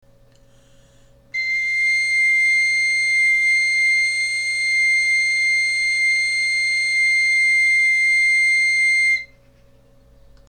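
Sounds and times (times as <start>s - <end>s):
galoubet three-hole pipe playing C note: 1.4s - 9.3s.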